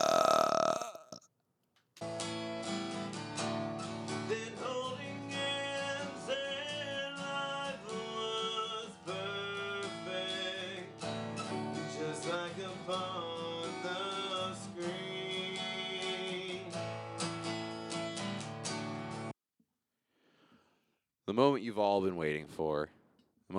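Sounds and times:
loud burp into the microphone: 0.0s - 1.2s
music: 2.0s - 19.3s
speech: 21.4s - 22.9s.

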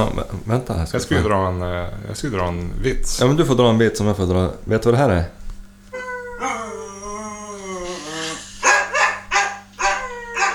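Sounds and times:
speech: 0.0s - 5.4s
person imitating a dog whining, howling and barking: 6.0s - 10.5s.

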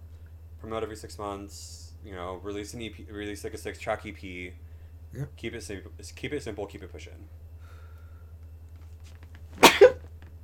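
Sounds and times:
steady low hum: 0.0s - 10.4s
speech: 0.6s - 7.4s
sharp sneeze with a brief voiced tail: 9.6s - 10.0s.

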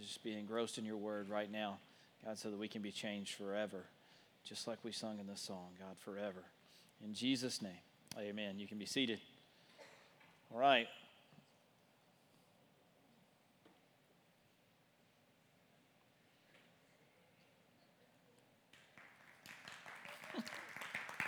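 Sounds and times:
speech: 0.0s - 9.3s, 10.5s - 11.0s
audience applause: 18.8s - 21.2s.

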